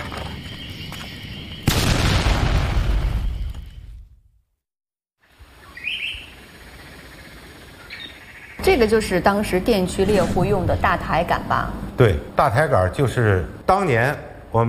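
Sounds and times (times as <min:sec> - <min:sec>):
birds chirping: 0:00.0 - 0:02.2, 0:05.2 - 0:13.7
watchtower blown up with explosives: 0:01.6 - 0:04.0
speech: 0:08.7 - 0:14.6.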